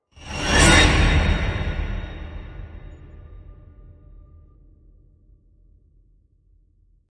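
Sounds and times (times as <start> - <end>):
destroy whoosh: 0.2 - 3.5.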